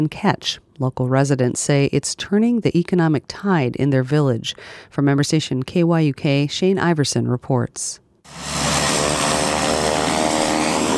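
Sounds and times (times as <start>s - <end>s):
speech: 0.0s - 8.8s
PC-12 turboprop aircraft taxiing on runway: 8.3s - 10.9s.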